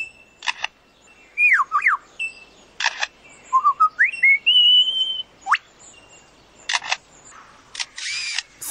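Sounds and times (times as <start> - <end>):
bird mimicking a camera shutter with clicks and whirs: 0.4 - 0.8, 2.8 - 3.1, 6.7 - 7.0, 7.7 - 8.6
bird whistling swoops and rising notes: 1.3 - 2.6, 3.4 - 5.7.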